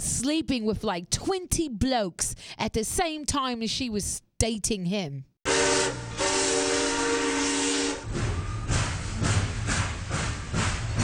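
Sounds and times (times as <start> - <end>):
speech: 0.2 - 5.3
steam train whistle: 5.5 - 11.0
steam engine chuffing while pulling away: 6.2 - 11.0.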